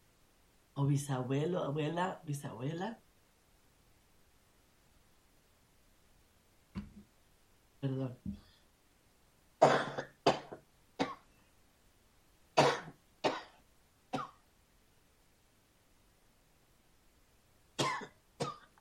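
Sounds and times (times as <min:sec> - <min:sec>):
speech: 0:00.8 - 0:03.0, 0:07.8 - 0:08.4
harsh coughing: 0:09.6 - 0:11.2, 0:12.6 - 0:13.6, 0:17.8 - 0:18.8.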